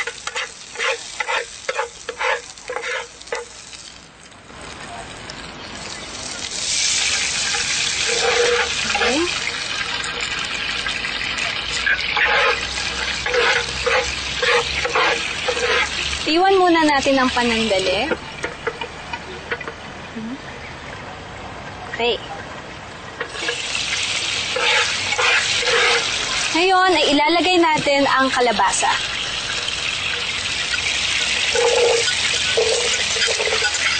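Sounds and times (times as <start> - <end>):
spoon stirring food in a pan while cooking ginataang kalabasa: 0.0 - 3.6, 6.7 - 19.8, 23.2 - 26.6, 27.7 - 33.9
hissing sizzle of food in a pan: 0.0 - 19.8, 23.1 - 33.9
water poured into pan of sautéed food: 2.5 - 16.3, 23.3 - 26.6, 28.1 - 33.9
speech: 17.2 - 18.2, 22.0 - 22.3, 26.6 - 29.2.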